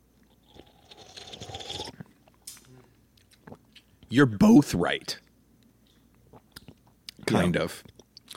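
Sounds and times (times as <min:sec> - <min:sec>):
slurping sip of a lightly carbonated drink: 0:00.4 - 0:02.1
speech: 0:04.1 - 0:05.2, 0:07.4 - 0:08.0.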